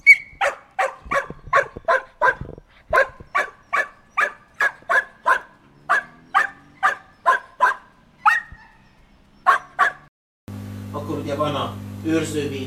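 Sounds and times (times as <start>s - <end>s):
tied-up dog barking: 0.1s - 10.1s
speech: 11.4s - 12.6s.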